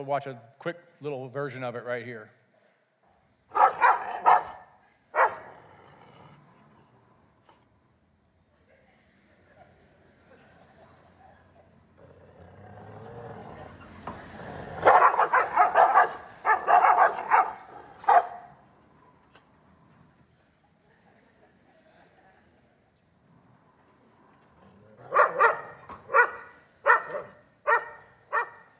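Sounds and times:
speech: 0.0 - 2.4
two dogs barking aggressively, fighting through a fence: 3.5 - 5.6, 14.7 - 18.6, 25.0 - 28.7
laughter: 8.5 - 11.8, 20.2 - 23.0.

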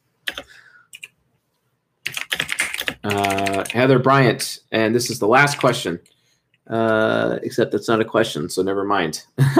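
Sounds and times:
typing on a computer keyboard: 0.3 - 1.1, 2.0 - 3.8, 5.5 - 5.8
speech: 3.1 - 9.5.

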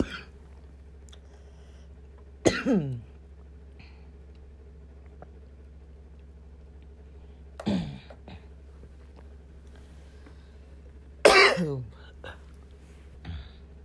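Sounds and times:
coughing: 0.0 - 0.4, 2.4 - 3.1, 7.6 - 8.6, 11.2 - 12.5
throat clearing: 0.0 - 0.4, 2.5 - 3.1, 7.6 - 8.5, 11.3 - 12.4
low steady hum: 0.0 - 13.8.

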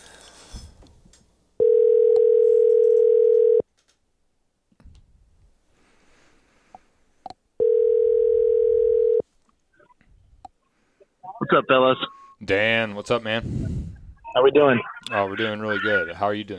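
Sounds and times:
phone ringing tone: 1.6 - 3.6, 7.6 - 9.2
speech: 11.5 - 13.7, 14.4 - 16.5.

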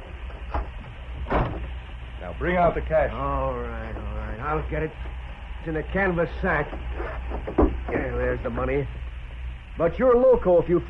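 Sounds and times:
low steady rumble: 0.0 - 10.8
heavy iron safe door opening with dull metallic clunks: 0.5 - 1.8
speech: 2.3 - 9.1, 9.8 - 10.8.

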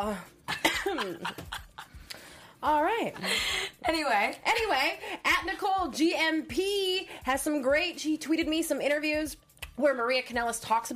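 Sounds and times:
speech: 0.0 - 0.4, 1.0 - 1.6, 2.6 - 10.9
person coughing harshly: 0.5 - 1.2.

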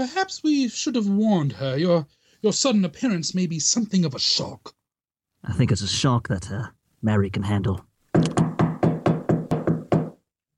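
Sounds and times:
speech: 0.0 - 4.8, 5.4 - 8.3
knocking on a locked wooden door: 8.2 - 10.2.

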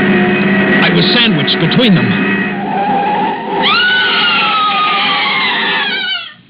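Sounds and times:
rough rumbling car noise: 0.0 - 4.7
speech: 1.0 - 2.6
woman screaming as car goes over cliff: 3.6 - 6.4.

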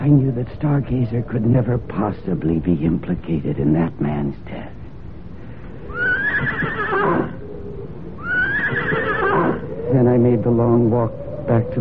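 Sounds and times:
speech: 0.0 - 4.8, 10.0 - 11.7
horse tethered in the woods neighing: 5.9 - 7.4, 8.2 - 9.7.

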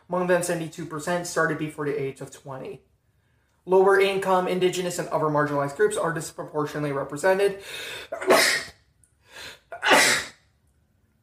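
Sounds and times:
speech: 0.1 - 2.9, 3.7 - 8.6
soft intake of breath: 7.6 - 8.1, 9.2 - 9.7
person sneezing: 8.0 - 8.8, 9.4 - 10.4.

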